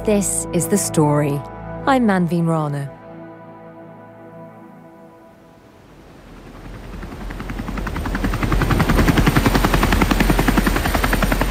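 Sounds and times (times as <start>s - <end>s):
speech: 0.0s - 3.0s
helicopter rotor chopping over the North Sea: 6.2s - 11.4s.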